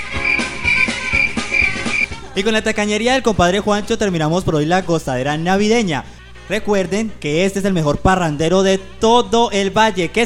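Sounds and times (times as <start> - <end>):
crickets chirping: 0.0 - 2.1
speech: 2.4 - 10.2.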